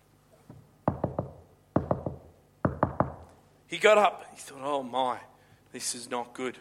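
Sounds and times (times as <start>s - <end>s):
knocking on a door at night: 0.9s - 3.3s
speech: 3.7s - 6.5s.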